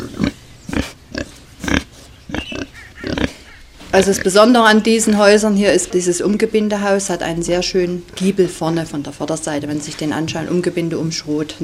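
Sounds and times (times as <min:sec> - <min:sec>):
pigs grunting in a stable: 0:00.0 - 0:05.5
speech: 0:03.9 - 0:11.6.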